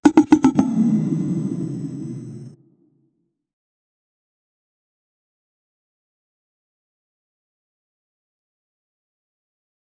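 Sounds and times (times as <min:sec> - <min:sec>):
short retro RPG game sound: 0:00.0 - 0:02.6.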